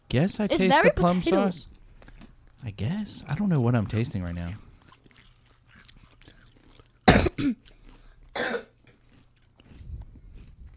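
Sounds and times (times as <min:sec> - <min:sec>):
speech: 0:00.1 - 0:01.8, 0:02.6 - 0:04.6, 0:07.4 - 0:07.7
rougher hacking cough: 0:07.0 - 0:07.7, 0:08.3 - 0:09.0
sharp coughs from choking on a potato chip: 0:07.1 - 0:07.6, 0:08.3 - 0:08.8.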